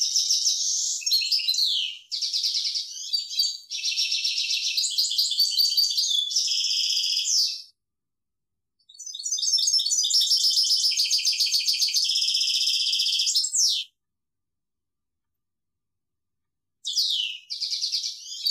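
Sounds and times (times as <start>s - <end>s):
European goldfinch song: 0.0s - 7.7s, 8.8s - 14.0s, 16.8s - 18.4s.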